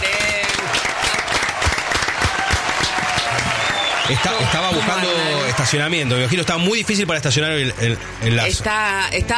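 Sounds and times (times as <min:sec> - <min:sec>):
faint cheering: 0:00.0 - 0:06.6
crowd applauding: 0:00.0 - 0:07.4
whistles: 0:03.2 - 0:05.2
speech: 0:04.1 - 0:09.3.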